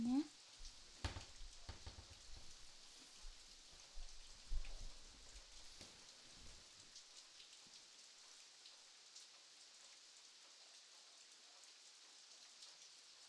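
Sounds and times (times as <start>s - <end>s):
steady rain falling: 0.0s - 13.2s
raindrops tapping a surface: 1.0s - 2.6s.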